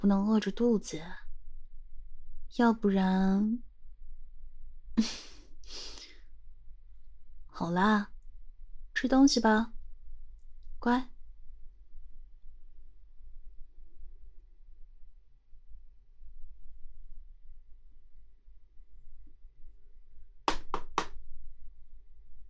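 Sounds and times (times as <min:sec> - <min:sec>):
speech: 0:00.0 - 0:01.2, 0:02.5 - 0:03.7, 0:05.0 - 0:05.9, 0:07.6 - 0:08.1, 0:09.0 - 0:09.8, 0:10.8 - 0:11.1
faint low hum: 0:00.0 - 0:22.4
knocking on a door: 0:20.5 - 0:21.2.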